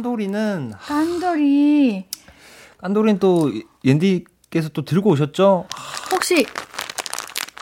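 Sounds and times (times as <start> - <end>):
speech: 0.0 - 2.2, 2.8 - 6.6
hard crunchy snack being chewed: 5.7 - 7.6.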